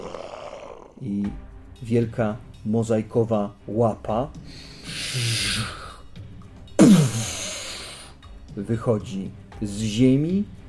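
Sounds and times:
bear roaring deep and sustained: 0:00.0 - 0:01.0
speech: 0:01.0 - 0:05.8, 0:08.6 - 0:10.6.

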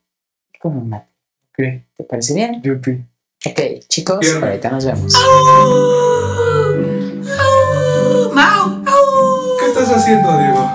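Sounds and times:
speech: 0:00.6 - 0:06.3, 0:09.8 - 0:10.7
person imitating a cat meowing: 0:05.1 - 0:06.6, 0:07.3 - 0:09.9.

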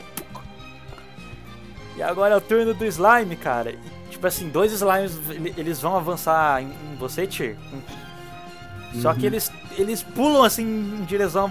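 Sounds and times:
steady music: 0:00.0 - 0:11.4
wet splat made with the mouth imitating a water balloon bursting: 0:00.2 - 0:00.5
speech: 0:02.0 - 0:08.1, 0:08.9 - 0:11.4.

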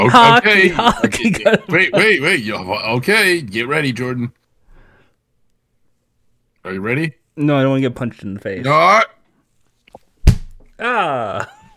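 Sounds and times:
laughter: 0:00.0 - 0:02.6
speech: 0:00.0 - 0:04.4, 0:06.6 - 0:09.2, 0:10.8 - 0:11.6
microphone smacked against a computer: 0:09.9 - 0:10.7.

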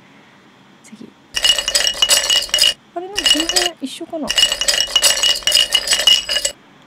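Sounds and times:
speech: 0:00.9 - 0:01.2, 0:03.3 - 0:04.8
ice clinking in a glass bottle: 0:01.4 - 0:03.7, 0:04.3 - 0:06.5.

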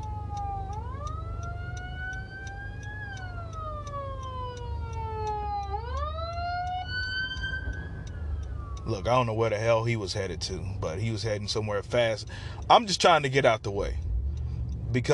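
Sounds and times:
emergency vehicle sirens wailing heard from inside a car: 0:00.0 - 0:10.8
low rumble of the car: 0:00.0 - 0:15.1
speech: 0:08.9 - 0:14.0, 0:14.9 - 0:15.1.

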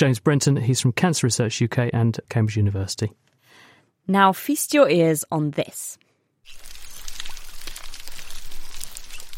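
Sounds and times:
speech: 0:00.0 - 0:06.7
dugongs munching and squeaking underwater: 0:06.5 - 0:09.3
snapping prawns crackling underwater in the Indian and Pacific Oceans: 0:06.5 - 0:09.3.

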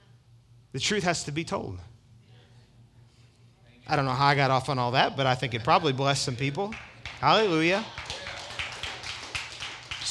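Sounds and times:
speech: 0:00.7 - 0:01.9, 0:03.9 - 0:08.1
audience hand clapping: 0:06.5 - 0:10.1.

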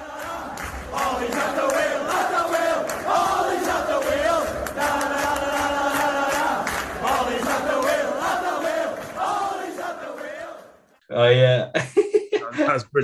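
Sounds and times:
large crowd of football fans singing a chant in a stadium: 0:00.0 - 0:10.9
laughter: 0:11.6 - 0:12.9
speech: 0:12.6 - 0:13.0.

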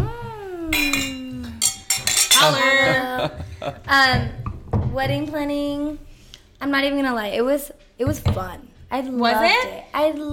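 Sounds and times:
glasses clinking in a toast: 0:00.7 - 0:03.0
laughter: 0:02.4 - 0:04.0
speech: 0:02.4 - 0:04.4, 0:05.0 - 0:10.3.

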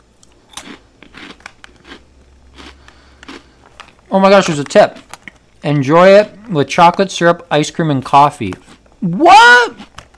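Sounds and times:
crunchy cinnamon churros bitten and chewed: 0:00.2 - 0:05.6, 0:09.6 - 0:10.1
speech: 0:04.1 - 0:05.0, 0:05.6 - 0:09.9.

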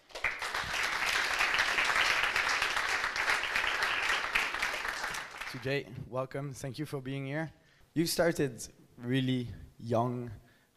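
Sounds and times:
audience applause: 0:00.0 - 0:05.7
speech: 0:05.6 - 0:10.4.

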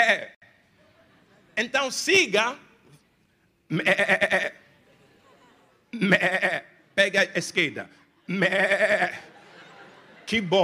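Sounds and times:
speech: 0:00.0 - 0:00.4, 0:01.6 - 0:02.7, 0:03.7 - 0:04.6, 0:05.9 - 0:09.3, 0:10.3 - 0:10.6
laughter: 0:00.0 - 0:01.7, 0:04.6 - 0:06.1, 0:08.0 - 0:10.6
human voice imitating a sheep bleat: 0:03.7 - 0:04.6, 0:06.0 - 0:06.7, 0:08.3 - 0:09.2.

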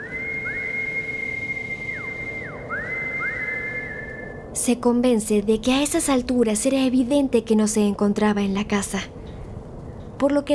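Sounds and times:
person whistling to call a dog: 0:00.0 - 0:04.4
constant low hum: 0:00.0 - 0:10.5
speech: 0:04.6 - 0:09.2, 0:10.2 - 0:10.5.

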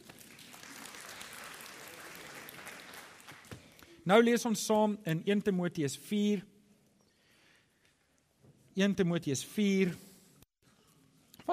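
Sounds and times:
audience applause: 0:00.0 - 0:03.8
speech: 0:04.1 - 0:06.5, 0:08.8 - 0:10.0.

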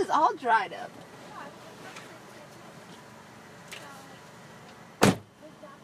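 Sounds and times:
speech: 0:00.1 - 0:01.0
truck hood popping open: 0:05.0 - 0:05.3.

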